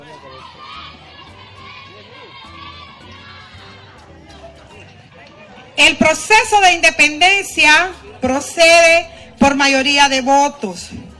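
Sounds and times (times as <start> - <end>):
large crowd shouting fervently: 0.0 - 6.2
speech: 5.8 - 11.0.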